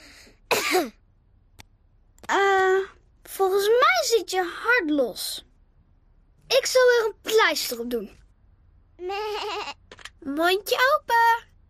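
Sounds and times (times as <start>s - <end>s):
short raspy cough in a quiet room: 0.5s - 1.0s
speech: 0.7s - 1.0s, 2.3s - 5.5s, 6.5s - 8.2s, 9.0s - 11.5s.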